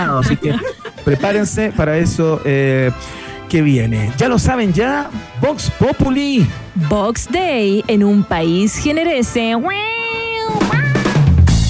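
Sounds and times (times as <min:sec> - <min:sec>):
laughter: 0:00.0 - 0:01.8
speech: 0:00.0 - 0:09.9
cat meowing: 0:10.5 - 0:11.2.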